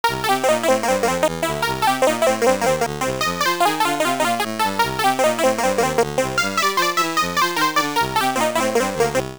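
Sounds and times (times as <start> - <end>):
bonus round clear music: 0.0 - 9.3.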